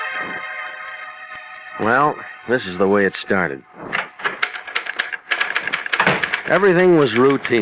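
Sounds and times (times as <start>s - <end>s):
typewriter typing on paper backed by carbons: 0.1s - 1.9s, 3.9s - 7.6s
speech: 1.8s - 3.7s, 6.5s - 7.6s.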